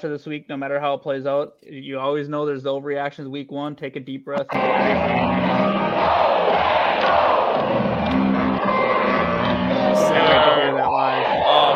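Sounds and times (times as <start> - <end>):
speech: 0.0 - 8.2
huge stadium crowd chanting and roaring in unison: 4.5 - 11.7.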